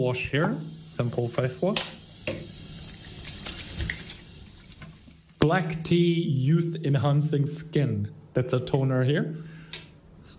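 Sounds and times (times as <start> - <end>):
speech: 0.0 - 2.4, 5.4 - 9.6
tap running warm water into a sink: 0.6 - 5.2.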